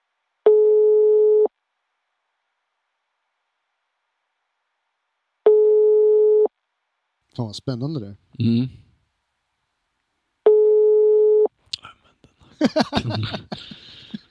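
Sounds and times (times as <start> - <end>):
telephone ringback tone on an outgoing call: 0.5 - 1.5, 5.5 - 6.5, 10.5 - 11.5
speech: 7.4 - 8.8, 12.6 - 13.9
laughter: 11.8 - 14.2.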